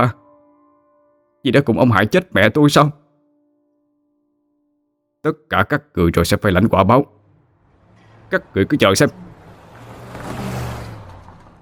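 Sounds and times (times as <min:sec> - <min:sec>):
speech: 0:00.0 - 0:00.2, 0:01.4 - 0:03.0, 0:05.2 - 0:07.2, 0:08.3 - 0:09.3
car driving away from a villa: 0:07.0 - 0:11.6.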